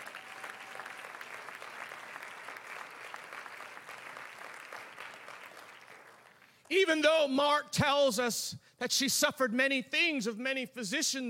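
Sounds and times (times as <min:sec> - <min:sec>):
audience clapping hands: 0:00.0 - 0:06.7
speech: 0:06.7 - 0:11.2.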